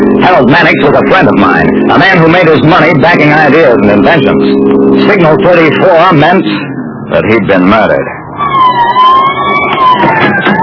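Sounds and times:
police car sirens wailing: 0:00.0 - 0:10.6
traffic rumble: 0:00.0 - 0:10.6
speech: 0:00.3 - 0:09.2.

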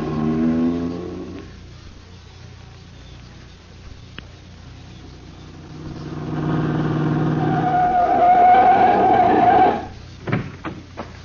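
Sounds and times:
car engine revving and roaring off: 0:00.0 - 0:01.5, 0:05.1 - 0:10.0.

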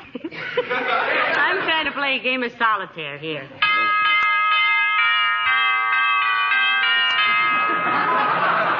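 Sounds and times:
laughter: 0:00.0 - 0:02.0, 0:07.2 - 0:08.7
speech: 0:02.0 - 0:04.0
doorbell ringing with a steady metallic tone: 0:03.6 - 0:08.7.

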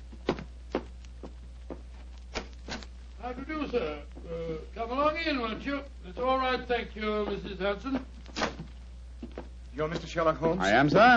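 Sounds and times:
faint constant low hum: 0:00.0 - 0:11.1
footsteps climbing wooden stairs: 0:00.1 - 0:01.9
speech: 0:03.3 - 0:08.1, 0:09.8 - 0:11.1.

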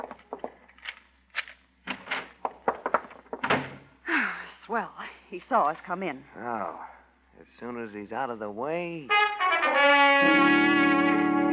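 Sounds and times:
door thudding open: 0:03.3 - 0:03.9
speech: 0:04.7 - 0:11.2.

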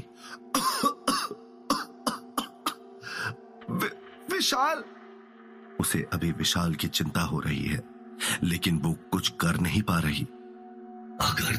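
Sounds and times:
person coughing hard: 0:00.3 - 0:02.9
speech: 0:03.3 - 0:05.0, 0:05.8 - 0:10.4, 0:11.2 - 0:11.5.

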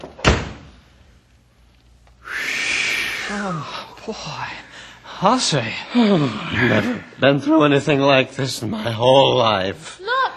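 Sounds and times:
door slamming shut: 0:00.0 - 0:00.7
speech: 0:03.3 - 0:10.1.

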